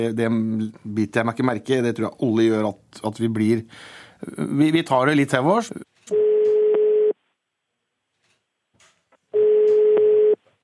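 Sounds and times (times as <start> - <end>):
speech: 0.0 - 6.2
telephone ringback tone of a call waiting to be answered: 6.1 - 7.2, 9.4 - 10.4.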